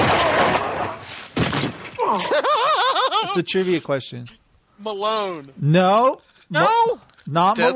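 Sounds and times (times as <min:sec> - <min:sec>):
gunshot sound effect from a TV show: 0:00.0 - 0:01.9
sharp crack: 0:00.0 - 0:02.1
laughter: 0:02.0 - 0:03.8
speech: 0:02.1 - 0:07.7.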